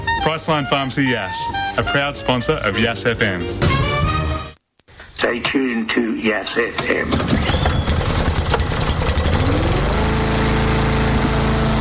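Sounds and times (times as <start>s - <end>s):
speech: 0.2s - 4.0s, 5.2s - 7.5s
lawn mower engine buzzing outside while mowing: 7.2s - 11.7s.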